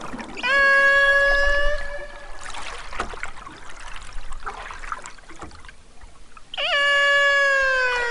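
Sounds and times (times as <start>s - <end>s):
lone male transient killer whale call: 0.3s - 2.6s, 6.5s - 8.0s.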